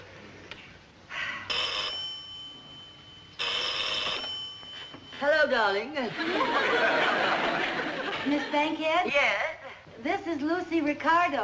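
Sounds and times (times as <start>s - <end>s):
old Western Electric rotary telephone mechanical bell ringing: 1.5s - 5.5s
speech: 5.2s - 11.4s
laughter: 6.0s - 8.8s.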